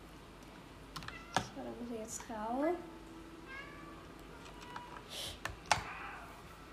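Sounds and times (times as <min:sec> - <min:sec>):
quiet hum: 0:00.0 - 0:06.7
speech: 0:01.6 - 0:03.0
cat meow in a video game: 0:03.5 - 0:05.1, 0:05.7 - 0:06.4.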